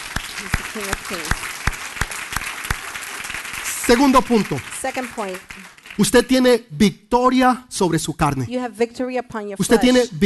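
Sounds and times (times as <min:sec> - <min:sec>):
audience applause: 0:00.0 - 0:06.2
speech: 0:00.4 - 0:01.6, 0:03.9 - 0:10.2.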